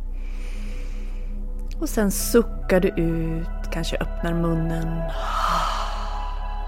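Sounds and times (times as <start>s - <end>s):
slow breath drawn in through the nose: 0.2s - 1.4s, 5.1s - 6.5s
speech: 1.8s - 5.5s.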